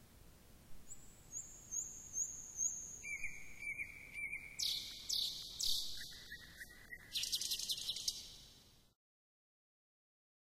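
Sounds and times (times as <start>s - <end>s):
nightingale singing whistles and harsh notes: 0.8s - 8.6s.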